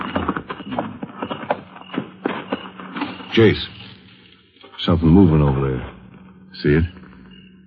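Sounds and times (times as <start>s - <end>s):
horses' hooves clip-clopping as they are led: 0.0s - 4.4s
speech: 3.4s - 3.8s, 4.8s - 6.0s, 6.6s - 7.0s.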